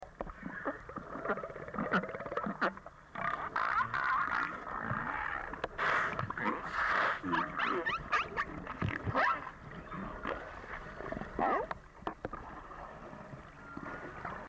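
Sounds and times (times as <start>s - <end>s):
cetacean social sounds: 0.4s - 11.8s.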